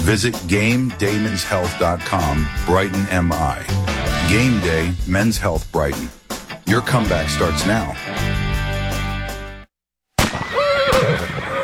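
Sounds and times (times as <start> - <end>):
speech: 0.0 - 8.4
loud wavering horse whinny: 10.2 - 11.6.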